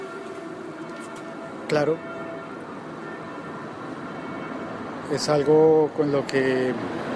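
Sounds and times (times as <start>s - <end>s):
civil defense warning siren at a distance: 0.0s - 5.5s
speech: 1.7s - 2.2s, 5.1s - 7.0s.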